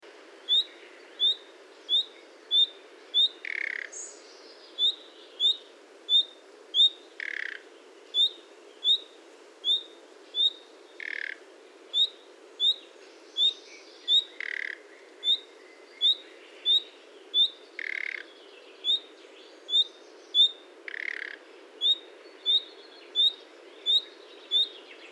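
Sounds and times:
common nightingale: 0.4 - 25.0.

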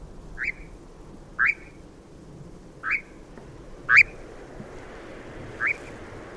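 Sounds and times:
European nightjar calling: 0.4 - 0.8, 1.4 - 1.8, 2.8 - 3.2, 3.9 - 4.2, 5.6 - 5.9.

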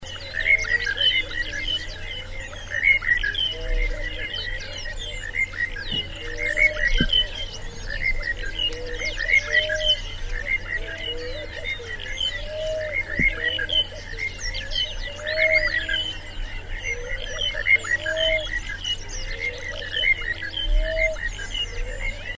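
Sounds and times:
laughing dove singing: 0.0 - 22.3.

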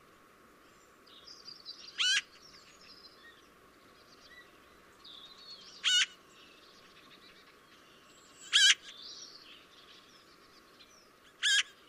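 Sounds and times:
faint bird chatter: 0.7 - 11.8
Eurasian magpie giving a hoarse buzzy call: 2.0 - 2.3, 5.8 - 6.2, 8.5 - 8.9, 11.4 - 11.8.

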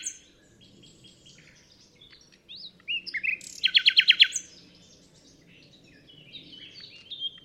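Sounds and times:
common nightingale song: 0.0 - 7.4.

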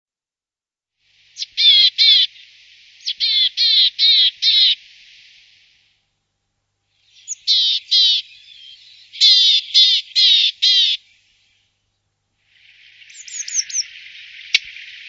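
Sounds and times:
willow tit calling: 1.2 - 5.9, 6.9 - 11.7, 12.5 - 15.0.

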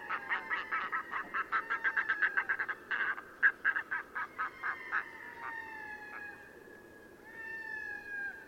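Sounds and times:
red-throated loon wail: 0.0 - 2.8, 4.2 - 6.5, 7.2 - 8.4.

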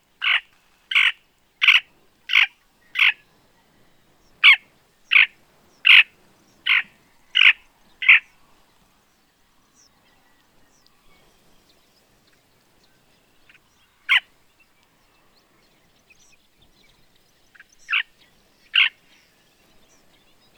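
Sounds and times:
Slavonian grebe calling: 0.2 - 3.3, 4.4 - 8.4, 13.4 - 14.4, 17.5 - 19.3.

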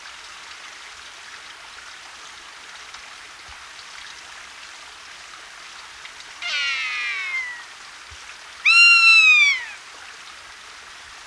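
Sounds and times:
rough-legged buzzard mewing cries: 6.4 - 7.7, 8.6 - 9.8.

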